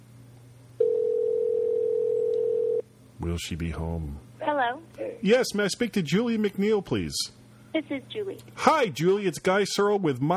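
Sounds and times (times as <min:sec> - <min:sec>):
electronic telephone ringing tone over the line: 0:00.8 - 0:02.8
speech: 0:03.2 - 0:10.3.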